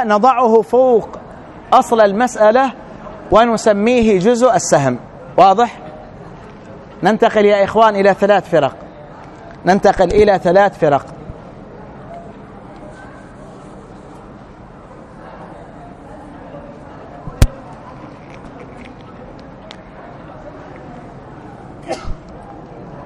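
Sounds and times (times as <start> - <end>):
speech: 0.0 - 5.8, 7.0 - 8.8, 9.6 - 11.2
low murmur: 0.0 - 23.0
person sneezing: 21.8 - 22.2.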